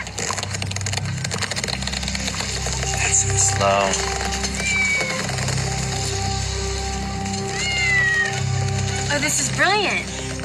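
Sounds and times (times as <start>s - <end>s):
rumble: 0.0s - 10.4s
speech: 3.4s - 4.4s, 9.2s - 10.2s
cat meowing: 4.6s - 5.3s, 7.4s - 8.6s.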